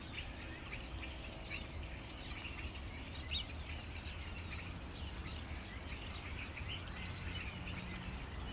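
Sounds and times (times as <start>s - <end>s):
several birds chirping and whistling: 0.0s - 8.5s.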